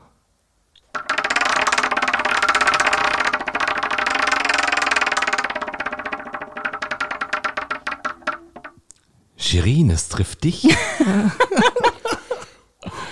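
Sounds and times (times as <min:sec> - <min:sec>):
game-show prize wheel spinning and rattling: 0:00.8 - 0:08.8
speech: 0:09.5 - 0:12.0
laughter: 0:10.6 - 0:12.5.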